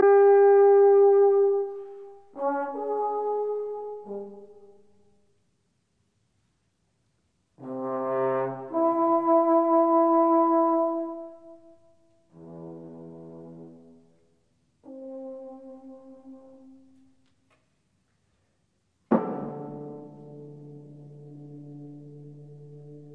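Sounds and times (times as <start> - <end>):
bass trombone: 0.0 - 4.9, 7.6 - 11.7, 12.3 - 14.1, 14.8 - 17.0, 19.1 - 23.1.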